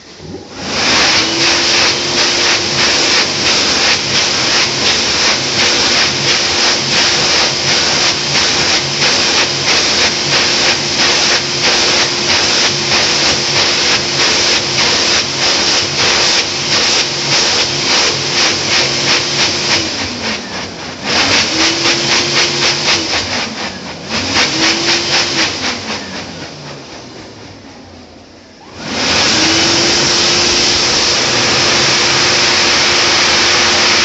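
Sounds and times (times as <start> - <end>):
hand dryer in a village: 0.0 - 27.7, 28.6 - 34.0.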